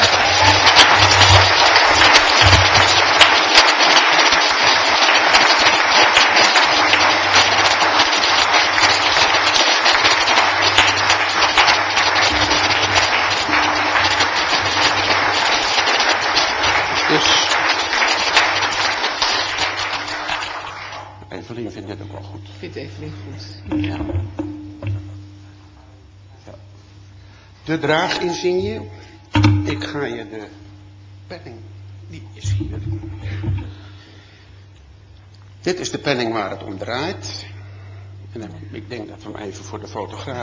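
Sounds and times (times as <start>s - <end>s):
loud sustained applause from a large crowd: 0.0s - 21.6s
speech: 27.8s - 29.0s, 29.7s - 30.6s, 31.3s - 33.9s, 35.6s - 37.5s, 38.3s - 40.4s.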